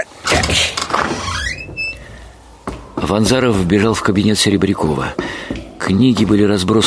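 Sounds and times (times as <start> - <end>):
door being forced open with scabbard: 0.2 - 3.4
speech: 3.0 - 6.8.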